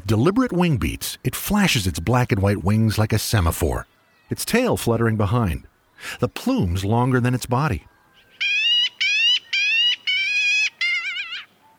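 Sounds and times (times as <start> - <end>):
speech: 0.1 - 7.9
black-billed magpie giving harsh raspy calls in open ranch country: 8.2 - 11.6.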